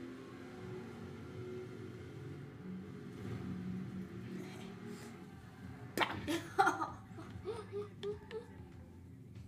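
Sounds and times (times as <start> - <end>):
Jeep engine driving through a tunnel: 0.0 - 6.0
laughter: 6.2 - 8.5.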